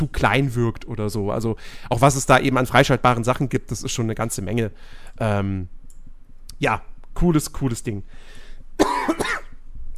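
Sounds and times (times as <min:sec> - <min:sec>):
speech: 0:00.0 - 0:05.8, 0:06.6 - 0:09.4
faint breathy sound: 0:01.6 - 0:01.9, 0:04.8 - 0:05.2, 0:08.1 - 0:08.7
raspy coughs: 0:08.8 - 0:09.6.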